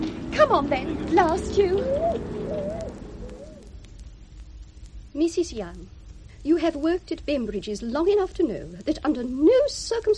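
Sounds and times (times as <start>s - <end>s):
steady low rumble: 0.0s - 10.1s
speech: 0.4s - 2.4s, 5.2s - 10.1s
bird on a bus hooting: 1.1s - 3.8s.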